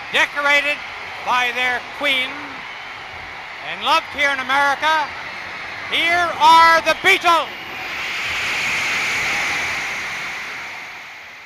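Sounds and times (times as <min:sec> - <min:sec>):
huge stadium concert crowd roaring and screaming: 0:00.0 - 0:11.4
speech: 0:00.1 - 0:02.5, 0:03.6 - 0:05.2, 0:05.9 - 0:07.6.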